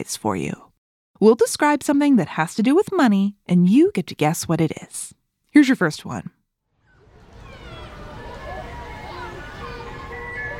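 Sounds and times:
speech: 0:00.0 - 0:06.4
ice cream truck tinkling jingle: 0:07.3 - 0:10.5.

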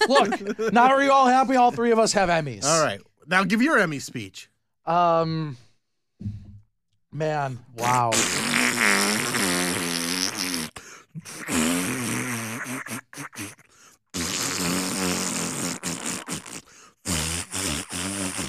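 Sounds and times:
laughter: 0:00.0 - 0:02.1
speech: 0:00.0 - 0:05.6, 0:06.2 - 0:06.4, 0:07.1 - 0:08.4
buzzy fart noises blown with the mouth: 0:07.8 - 0:18.4.

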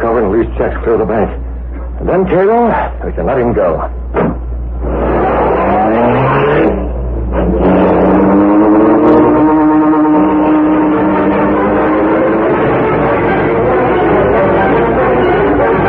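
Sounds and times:
speech: 0:00.4 - 0:01.4, 0:02.0 - 0:04.4
car engine revving hard and accelerating through the gears: 0:04.1 - 0:15.8.

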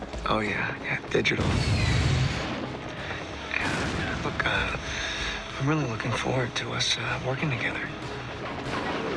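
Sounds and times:
speech: 0:00.3 - 0:02.0, 0:04.2 - 0:08.8
deep booming movie explosion: 0:01.4 - 0:02.7, 0:03.6 - 0:04.7.

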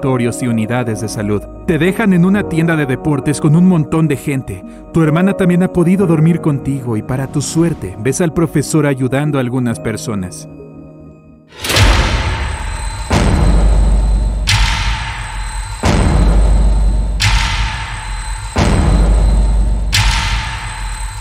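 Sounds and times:
speech: 0:00.0 - 0:10.6
loud explosive booms: 0:11.6 - 0:21.1.

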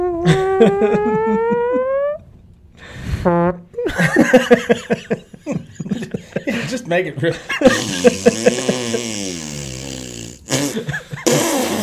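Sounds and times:
voice making a long fart noise: 0:00.0 - 0:02.3, 0:07.7 - 0:11.8
people laughing: 0:00.2 - 0:01.8, 0:03.8 - 0:09.0, 0:10.7 - 0:11.4
speech: 0:00.2 - 0:01.9, 0:02.8 - 0:09.5.

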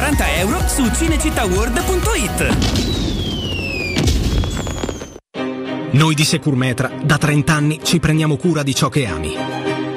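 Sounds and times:
speech: 0:00.1 - 0:03.1, 0:05.9 - 0:09.8
descending firework whistles: 0:02.7 - 0:05.2.

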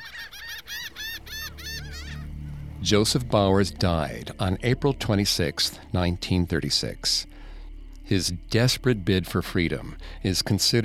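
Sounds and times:
lone seagull squawking: 0:00.0 - 0:02.4
low rumbling background: 0:00.2 - 0:10.8
speech: 0:02.8 - 0:07.3, 0:08.1 - 0:10.8.

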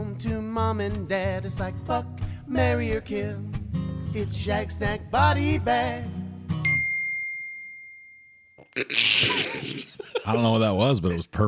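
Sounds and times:
speech: 0:00.2 - 0:06.2, 0:08.8 - 0:11.4
computer notification alert ding: 0:06.6 - 0:08.8
laughter: 0:08.8 - 0:11.4.

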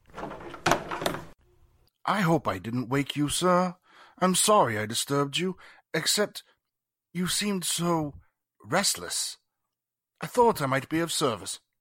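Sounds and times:
door opening with a rattling, scraping sweep: 0:00.0 - 0:01.4
clunks of the door latch and frame: 0:00.1 - 0:01.4
speech: 0:02.1 - 0:06.5, 0:07.1 - 0:09.4, 0:10.2 - 0:11.6.

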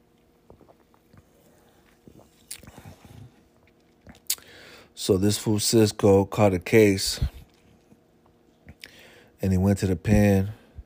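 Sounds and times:
person sipping a drink with a slurp and a swallow: 0:00.4 - 0:04.8, 0:07.3 - 0:09.2
speech: 0:05.0 - 0:07.4, 0:09.4 - 0:10.6.

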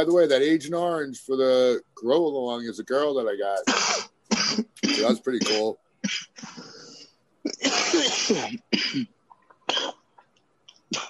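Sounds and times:
speech: 0:00.0 - 0:06.8, 0:07.4 - 0:09.1
person clearing throat: 0:03.6 - 0:06.4, 0:07.5 - 0:10.0
person coughing in a harsh fit: 0:03.6 - 0:06.4, 0:07.5 - 0:10.0.

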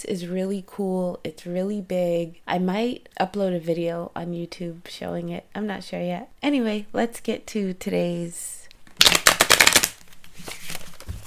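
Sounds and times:
speech: 0:00.0 - 0:09.2
deck of cards riffle shuffled: 0:08.9 - 0:11.2.

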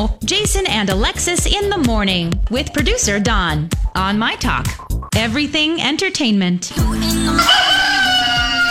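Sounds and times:
speech: 0:00.1 - 0:08.0
rooster crowing: 0:07.3 - 0:08.7.

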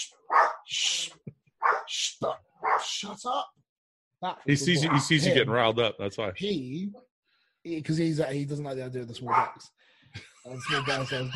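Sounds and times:
speech: 0:00.0 - 0:00.9, 0:03.0 - 0:03.6, 0:04.2 - 0:11.3
small dog barking: 0:00.3 - 0:00.6, 0:01.6 - 0:01.9, 0:02.6 - 0:02.9, 0:09.3 - 0:09.6
laughter: 0:10.2 - 0:11.3.

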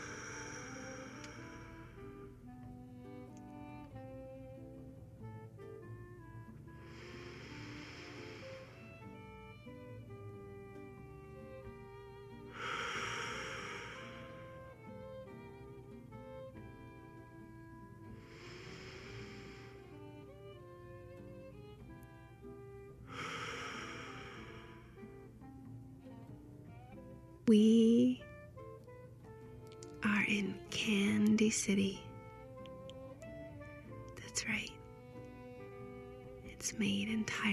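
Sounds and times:
slow deep breaths into the stomach: 0:00.0 - 0:02.4, 0:06.6 - 0:10.2, 0:12.3 - 0:15.5, 0:18.0 - 0:20.4, 0:23.0 - 0:25.2
soft steady music: 0:00.0 - 0:37.5
speech: 0:27.5 - 0:27.7, 0:31.5 - 0:32.1, 0:36.8 - 0:37.1.

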